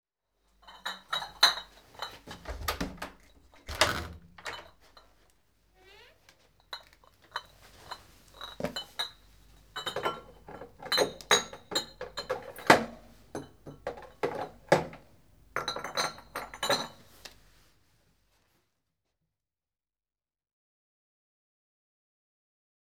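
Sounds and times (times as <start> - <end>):
milkman's milk bottles clinking: 0.6 - 5.1, 6.7 - 17.1.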